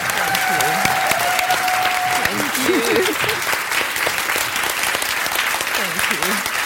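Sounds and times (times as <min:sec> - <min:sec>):
audience applauding at the close of a panel event: 0:00.0 - 0:06.6
laughter: 0:01.9 - 0:03.6.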